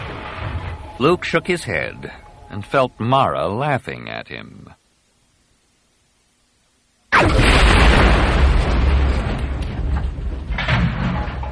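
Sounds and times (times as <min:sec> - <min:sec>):
blaster blast on a door: 0:00.0 - 0:01.5, 0:07.1 - 0:11.4
speech: 0:01.0 - 0:04.8.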